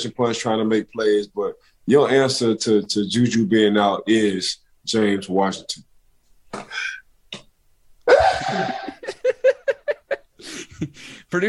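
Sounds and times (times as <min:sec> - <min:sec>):
speech: 0:00.0 - 0:05.9, 0:06.5 - 0:07.0, 0:08.2 - 0:08.8, 0:10.4 - 0:11.4
person sneezing: 0:06.5 - 0:07.0
laughter: 0:08.1 - 0:11.0.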